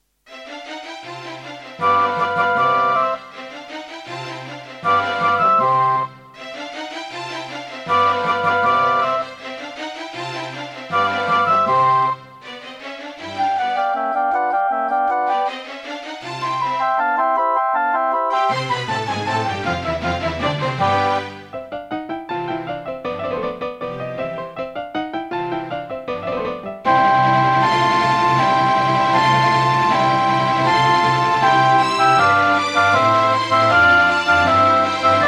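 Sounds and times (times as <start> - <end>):
classical music demo: 0.1 - 35.2.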